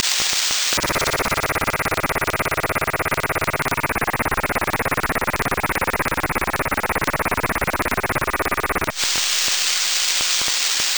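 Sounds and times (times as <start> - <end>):
TYT-EP radio scanner: 0.1 - 10.9.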